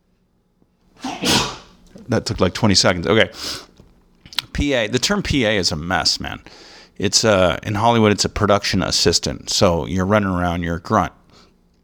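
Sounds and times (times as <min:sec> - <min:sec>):
loud sneeze: 0:01.0 - 0:01.8
speech: 0:02.1 - 0:03.7, 0:04.6 - 0:11.2.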